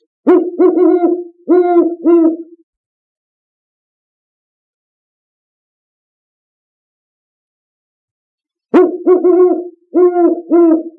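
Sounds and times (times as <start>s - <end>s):
great horned owl: 0.3s - 2.5s, 8.8s - 10.9s.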